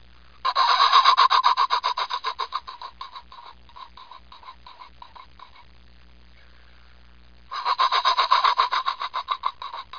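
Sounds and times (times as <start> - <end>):
pheasant: 0.4 - 5.7, 7.5 - 9.9.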